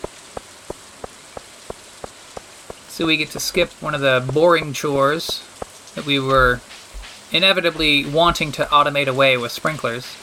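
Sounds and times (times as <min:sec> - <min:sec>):
soft ticks: 0:00.0 - 0:07.1
rain falling in a farming video game: 0:00.0 - 0:10.2
speech: 0:03.0 - 0:06.7, 0:07.3 - 0:10.2.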